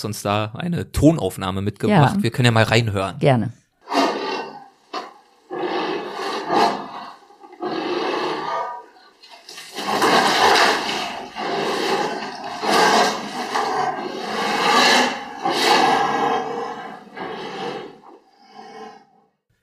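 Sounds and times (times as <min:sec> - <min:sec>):
speech: 0:00.0 - 0:03.6
two anteaters at a zoo huffing and roaring: 0:03.9 - 0:09.2, 0:09.8 - 0:19.1.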